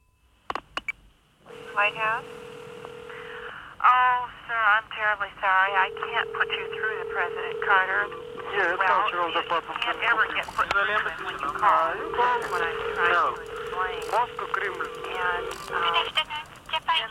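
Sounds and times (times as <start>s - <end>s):
people talking: 1.5s - 2.3s, 3.1s - 17.0s
steady electronic telephone tone: 1.5s - 4.2s, 5.6s - 16.5s
telephone dialing clicks: 5.8s - 17.0s.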